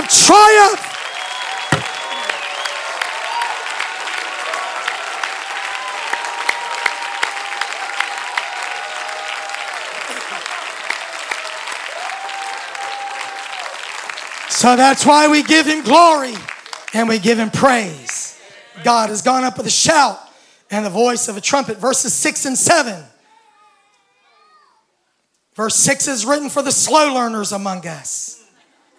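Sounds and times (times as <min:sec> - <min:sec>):
audience clapping: 0:00.0 - 0:18.3
speech: 0:00.1 - 0:00.9, 0:14.6 - 0:18.1, 0:18.8 - 0:23.2, 0:25.6 - 0:28.4.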